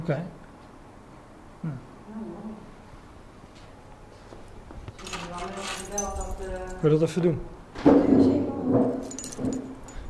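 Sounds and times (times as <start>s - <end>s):
speech: 0.0s - 0.4s, 1.6s - 2.7s, 5.5s - 9.7s
keys jangling: 5.0s - 6.9s, 9.0s - 10.0s.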